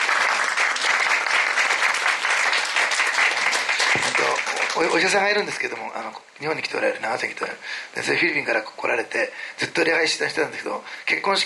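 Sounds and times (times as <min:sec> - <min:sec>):
audience applause at a church service: 0:00.0 - 0:05.3
speech: 0:04.8 - 0:11.4.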